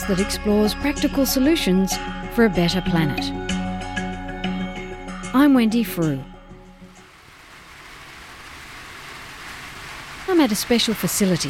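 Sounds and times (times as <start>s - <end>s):
speech: 0.1s - 3.6s, 5.3s - 6.3s, 10.4s - 11.4s
heavy rain pouring at a facility for sick koalas in Richmond Australia: 6.9s - 11.4s.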